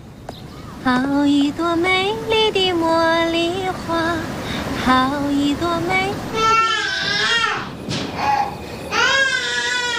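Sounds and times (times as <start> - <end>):
speech: 0.8 - 6.6
baby crying in the early morning: 6.4 - 9.9.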